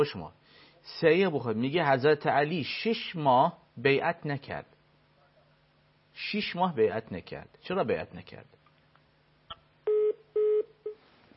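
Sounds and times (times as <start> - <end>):
speech: 0.0 - 4.7, 6.2 - 8.6
telephone line tone beeps after the caller hangs up: 9.9 - 11.0.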